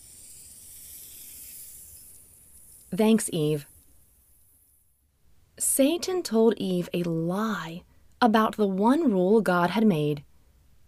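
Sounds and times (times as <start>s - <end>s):
snake hissing: 0.0s - 5.0s
speech: 2.9s - 3.7s, 5.8s - 10.3s.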